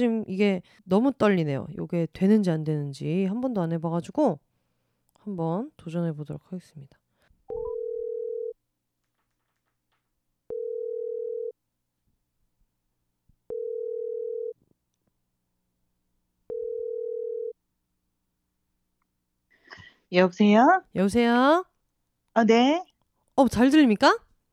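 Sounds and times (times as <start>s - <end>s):
speech: 0.0s - 4.5s, 5.2s - 7.6s, 20.1s - 21.7s, 22.4s - 24.2s
telephone ringback tone: 7.5s - 8.6s, 10.5s - 11.6s, 13.5s - 14.6s, 16.5s - 17.6s.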